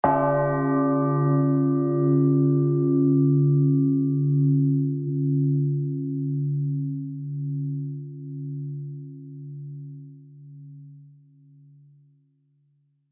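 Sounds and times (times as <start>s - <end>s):
cathedral church bell single hit: 0.0s - 8.8s.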